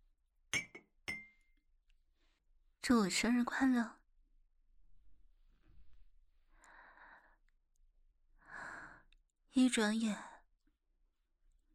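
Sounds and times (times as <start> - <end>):
glasses clinking in a toast: 0.6 - 1.4
speech: 2.8 - 4.0, 9.6 - 10.3.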